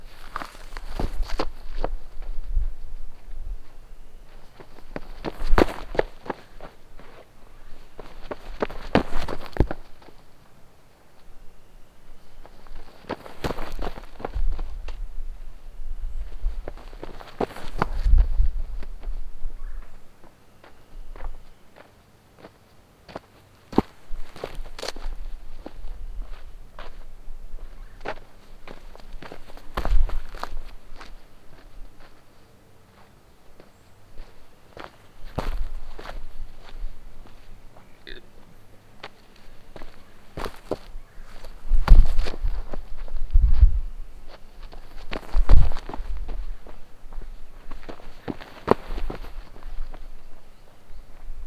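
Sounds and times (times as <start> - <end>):
footsteps on dirt: 0.0 - 51.4.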